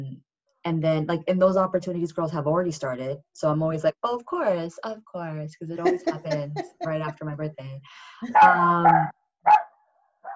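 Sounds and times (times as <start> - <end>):
speech: 0.0 - 9.6
laughter: 5.8 - 7.2
female dog barking: 8.3 - 10.3
female dog yipping softly: 8.4 - 9.7.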